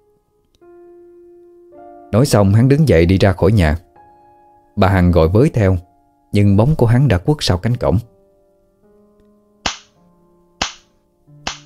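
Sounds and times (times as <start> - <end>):
speech: 2.1 - 3.8, 4.8 - 8.1
slaps in a rented room: 9.6 - 10.0, 10.6 - 11.6.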